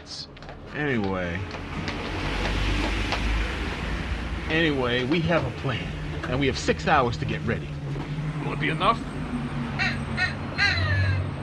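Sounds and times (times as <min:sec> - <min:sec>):
low rumbling background: 0:00.0 - 0:11.4
speech: 0:00.7 - 0:02.1, 0:04.5 - 0:07.8, 0:08.4 - 0:09.1
crow cawing: 0:09.7 - 0:11.3.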